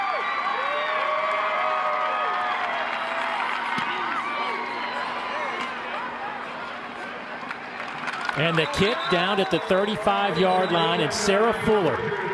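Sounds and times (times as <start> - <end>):
large stadium crowd roaring and cheering: 0.0 - 12.3
speech: 8.4 - 12.3
crowd whistles: 8.5 - 9.6.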